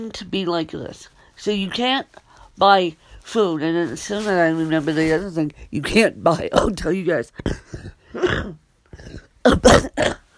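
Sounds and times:
speech: 0:00.0 - 0:10.2
person coughing: 0:07.4 - 0:10.3
rough throat-clearing hack: 0:07.4 - 0:10.3.

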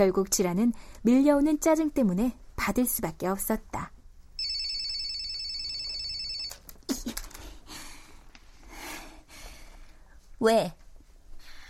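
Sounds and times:
speech: 0:00.0 - 0:04.0, 0:10.4 - 0:10.8
mobile phone ringtone ringing: 0:04.4 - 0:06.6.

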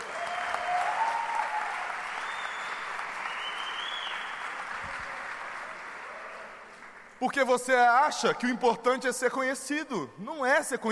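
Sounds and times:
crowd applauding: 0:00.0 - 0:07.2
speech: 0:07.2 - 0:10.8.

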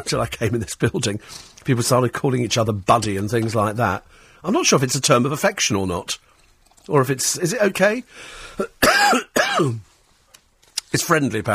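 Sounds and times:
speech: 0:00.0 - 0:06.3, 0:06.9 - 0:09.9, 0:10.9 - 0:11.5
harsh coughing with throat clearing: 0:08.6 - 0:09.9.

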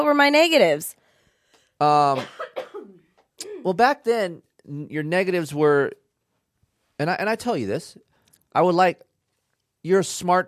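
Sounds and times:
speech: 0:00.0 - 0:01.0, 0:01.8 - 0:02.6, 0:03.6 - 0:06.0, 0:07.0 - 0:09.1, 0:09.8 - 0:10.4
single loud throaty cough: 0:02.0 - 0:03.8.

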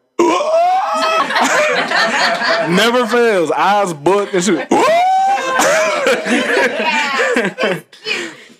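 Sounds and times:
laughter: 0:00.6 - 0:08.5
speech: 0:02.2 - 0:05.0, 0:05.6 - 0:08.2
shocked gasp from a voice: 0:08.0 - 0:08.5.

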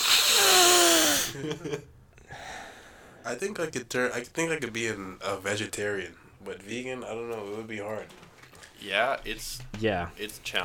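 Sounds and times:
person sniffing truffle salt loudly with a voiced hum: 0:00.0 - 0:01.4
speech: 0:01.5 - 0:02.0, 0:03.2 - 0:10.6.

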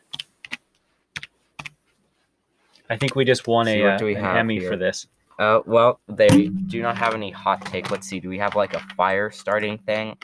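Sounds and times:
computer keyboard keys clacking: 0:01.2 - 0:01.8
speech: 0:02.9 - 0:10.2.

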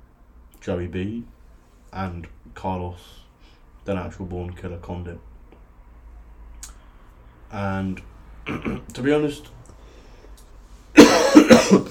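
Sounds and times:
speech: 0:00.6 - 0:03.2, 0:03.9 - 0:05.3, 0:07.5 - 0:09.6, 0:11.5 - 0:11.8
person coughing: 0:08.5 - 0:08.9, 0:11.0 - 0:11.8.

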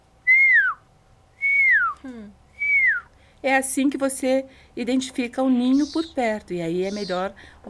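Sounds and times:
person imitating high whistle call of puma cubs: 0:00.3 - 0:00.8, 0:01.4 - 0:03.1
speech: 0:03.4 - 0:07.6.

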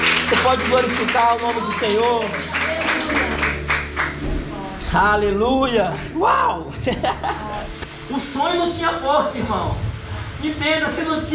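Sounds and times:
crowd applauding in a large room: 0:00.0 - 0:04.6
speech: 0:00.5 - 0:03.4, 0:04.9 - 0:09.8, 0:10.4 - 0:11.3
laughter: 0:06.7 - 0:07.8.

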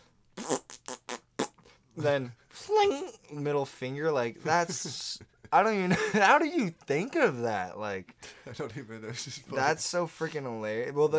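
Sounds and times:
mouth imitation of a fart bomb: 0:00.4 - 0:01.6
speech: 0:02.0 - 0:11.1
laughter: 0:04.4 - 0:06.6.

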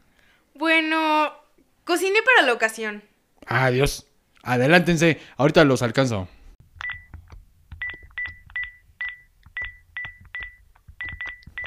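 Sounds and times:
speech: 0:01.9 - 0:06.4
electronic phone keypad tones dialing a number: 0:06.8 - 0:07.2, 0:07.8 - 0:11.6.

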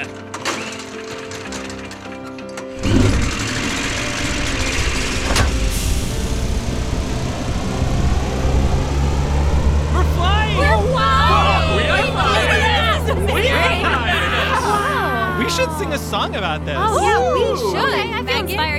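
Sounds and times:
whirring tonal mechanical hum: 0:02.8 - 0:16.2
ship engine starting up and roaring: 0:02.8 - 0:16.8
laughter: 0:10.0 - 0:18.7.

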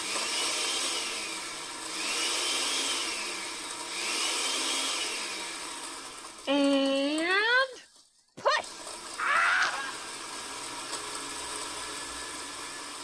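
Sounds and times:
large meat grinder switched on and running: 0:00.0 - 0:07.2, 0:08.7 - 0:13.0.

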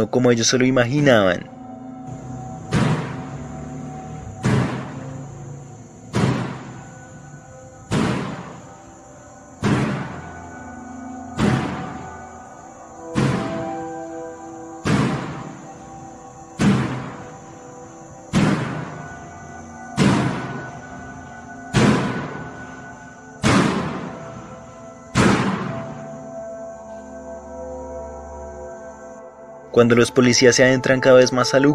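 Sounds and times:
speech: 0:00.0 - 0:01.6, 0:29.8 - 0:31.7
heavy banging on a metal door: 0:02.7 - 0:03.5, 0:04.4 - 0:05.0, 0:06.1 - 0:06.9, 0:07.9 - 0:08.7, 0:09.6 - 0:10.2, 0:11.4 - 0:12.1, 0:13.1 - 0:13.7, 0:14.8 - 0:15.6, 0:16.6 - 0:17.3, 0:18.3 - 0:19.0, 0:20.0 - 0:20.8, 0:21.7 - 0:22.7, 0:23.4 - 0:24.5, 0:25.1 - 0:26.1.

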